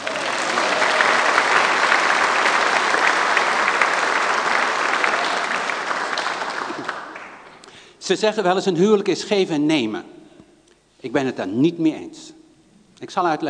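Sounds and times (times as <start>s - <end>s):
audience applause: 0.0s - 7.6s
speech: 8.1s - 10.2s, 11.0s - 12.4s, 13.0s - 13.4s.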